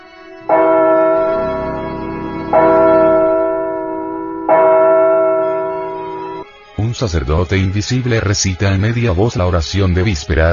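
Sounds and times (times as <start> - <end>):
church bell tolling: 0.5 - 6.5
speech: 7.0 - 10.5.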